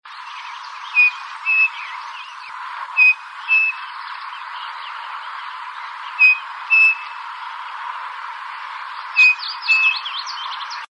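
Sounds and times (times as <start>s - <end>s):
crespin bird call: 0.2s - 7.2s, 9.1s - 10.8s.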